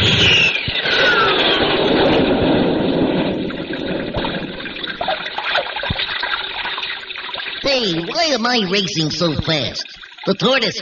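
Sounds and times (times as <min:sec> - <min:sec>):
descending whistle: 0:00.0 - 0:02.3
babbling brook water rushing and bubbling: 0:01.5 - 0:10.7
speech: 0:07.8 - 0:10.7.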